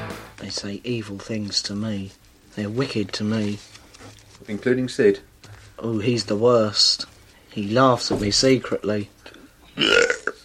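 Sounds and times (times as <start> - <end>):
speech: 0.5 - 9.1, 9.8 - 10.1
man belching in London: 9.7 - 10.4.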